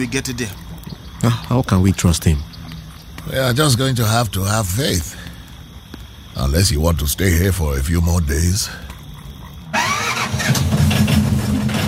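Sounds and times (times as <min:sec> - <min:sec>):
speech: 0:00.0 - 0:02.5, 0:03.2 - 0:05.2, 0:06.4 - 0:08.8
little fisherman's boat motor starting and running: 0:09.8 - 0:11.8.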